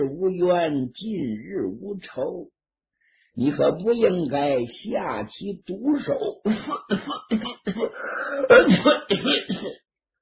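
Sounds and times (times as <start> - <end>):
speech: 0.0 - 2.6, 3.4 - 9.8
man clearing his throat: 6.5 - 9.8
man coughing: 6.5 - 9.8.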